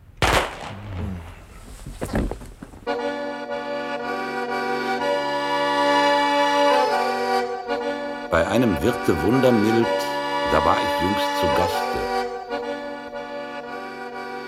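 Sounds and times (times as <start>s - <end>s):
rifle volley fired on command: 0.2s - 2.8s
sustained music: 2.9s - 14.4s
speech: 8.3s - 12.2s.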